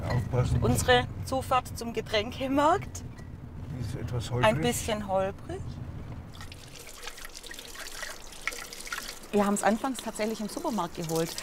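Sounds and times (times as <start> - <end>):
speech: 0.3 - 3.2, 3.8 - 5.8, 9.3 - 11.4
water trickling from a forest spring fountain: 6.3 - 11.4.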